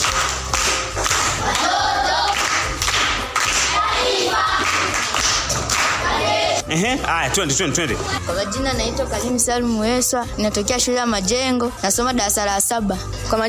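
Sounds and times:
primary school pupils clapping: 0.0 - 6.3
speech: 6.7 - 13.4.

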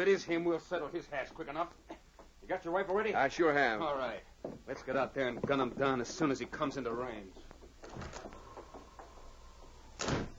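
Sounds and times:
speech: 0.0 - 8.2
door creaking and clattering as it swings: 7.4 - 10.3
door slamming shut with a loud thud: 10.0 - 10.3.

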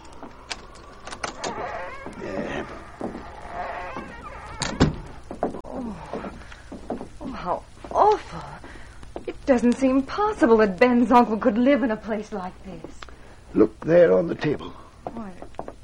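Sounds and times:
sharp latch click: 0.0 - 5.3
metallic rattling and clicking of a door being unlocked: 0.0 - 5.6
creak and scrape of door swinging open: 0.0 - 7.3
murmuring voices: 0.0 - 15.6
speech: 9.5 - 14.8.

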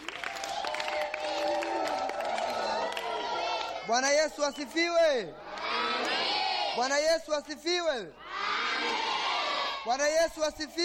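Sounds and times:
church congregation clapping during a Sunday service: 0.0 - 4.9
church congregation cheering voices: 0.0 - 7.0, 8.2 - 10.1
speech: 3.9 - 5.9, 6.8 - 8.2, 9.8 - 10.8.

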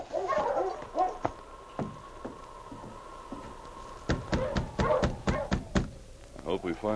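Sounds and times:
husky barking and yelping: 0.0 - 1.4, 4.2 - 5.7.

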